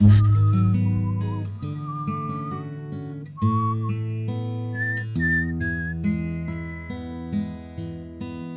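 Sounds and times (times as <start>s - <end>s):
person whistling a tune: 0.0s - 4.1s, 4.7s - 7.2s
instrumental music: 0.0s - 8.1s.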